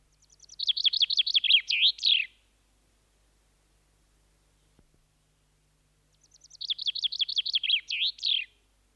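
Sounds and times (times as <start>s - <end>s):
common chaffinch singing: 0.0s - 2.4s, 6.1s - 8.6s.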